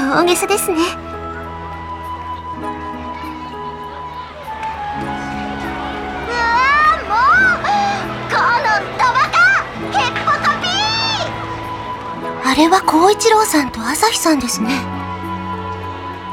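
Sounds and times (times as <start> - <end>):
steady crowd murmur: 0.0 - 16.3
speech: 0.1 - 1.1, 12.5 - 15.0
children shouting and calling out while playing: 1.4 - 12.2.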